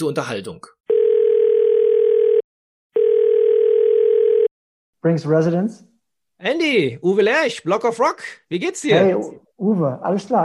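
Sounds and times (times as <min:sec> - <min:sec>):
speech: 0:00.0 - 0:00.8, 0:05.0 - 0:10.4
phone line ringing tone while placing a call: 0:00.9 - 0:04.5.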